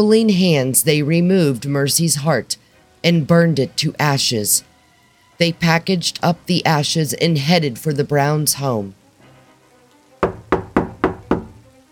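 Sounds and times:
speech: 0:00.0 - 0:04.7, 0:05.4 - 0:09.0
loud solid knocking on a wooden door: 0:10.2 - 0:11.7.

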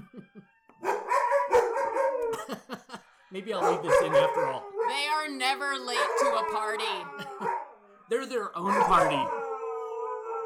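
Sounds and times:
laughter: 0:00.0 - 0:00.6, 0:02.3 - 0:03.1
faint steady siren wail: 0:00.0 - 0:02.4, 0:03.0 - 0:10.4
several dogs howling along with a siren: 0:00.7 - 0:02.4, 0:03.4 - 0:07.9, 0:08.6 - 0:10.4
dogs yipping: 0:00.8 - 0:02.4, 0:03.6 - 0:05.2, 0:05.9 - 0:07.7, 0:08.6 - 0:09.5
speech: 0:03.3 - 0:07.5, 0:08.1 - 0:09.4.

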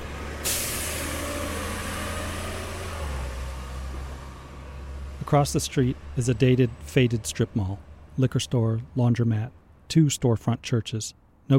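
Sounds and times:
bus engine idling with deep rumble: 0:00.0 - 0:10.7
loud hiss of a bus air brake: 0:00.4 - 0:02.0
speech: 0:05.3 - 0:11.5.

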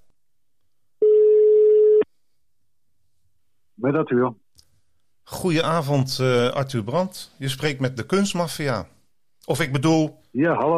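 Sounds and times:
telephone ringing tone as a phone call is placed: 0:01.0 - 0:02.0
speech: 0:03.8 - 0:04.4, 0:05.3 - 0:10.7.

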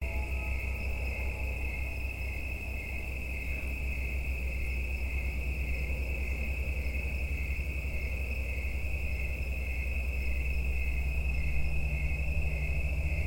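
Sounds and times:
constant low rumble: 0:00.0 - 0:13.2
insects calling in a steady evening chorus in late summer: 0:00.0 - 0:13.2.

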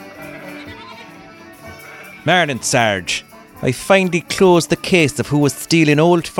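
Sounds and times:
sheep bleating in County Kerry Ireland: 0:00.0 - 0:03.1
speech: 0:02.2 - 0:06.3.

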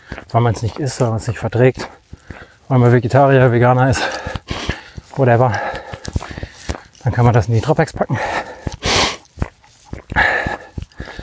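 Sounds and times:
soft footsteps: 0:00.0 - 0:11.2
speech: 0:00.3 - 0:02.0, 0:02.7 - 0:04.2, 0:05.2 - 0:05.6, 0:07.0 - 0:08.4
heavy panting while walking uphill: 0:01.8 - 0:02.6, 0:03.8 - 0:11.2
faint dog-like snort: 0:08.8 - 0:10.6.

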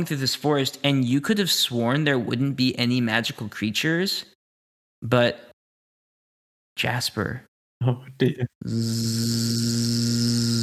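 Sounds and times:
speech: 0:00.0 - 0:04.3, 0:05.0 - 0:05.5, 0:06.8 - 0:10.6
insect buzzing in a forest: 0:08.7 - 0:10.6.

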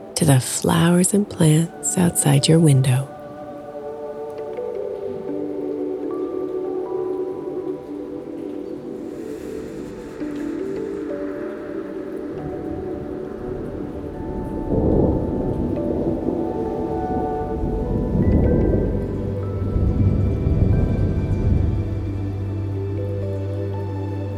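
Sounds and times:
steady rain pouring at night: 0:00.0 - 0:24.3
speech: 0:00.2 - 0:03.1
low rolling thunder: 0:10.5 - 0:22.9.

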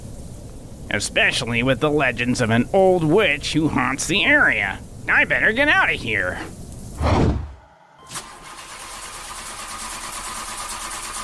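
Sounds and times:
steady low mechanical drone: 0:00.0 - 0:08.1
speech: 0:00.9 - 0:06.6
truck engine cranking but failing to start, out of gasoline: 0:08.1 - 0:11.2.

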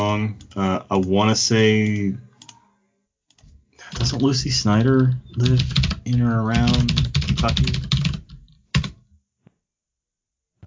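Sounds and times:
speech: 0:00.0 - 0:02.3, 0:03.9 - 0:07.9
typing on a mechanical keyboard: 0:03.9 - 0:04.4, 0:05.3 - 0:08.9.

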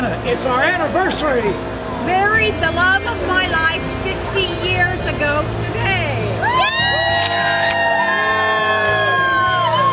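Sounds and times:
speech: 0:00.1 - 0:06.0
large outdoor crowd shouting and cheering in the rain: 0:06.3 - 0:09.9.

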